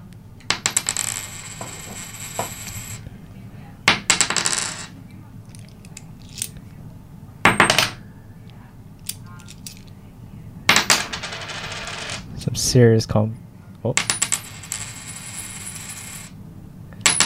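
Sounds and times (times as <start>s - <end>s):
coins dropping onto a table: 0.5s - 3.0s, 3.9s - 4.9s, 7.5s - 8.0s, 10.7s - 12.2s, 14.0s - 16.4s, 17.0s - 17.2s
speech: 12.6s - 14.1s.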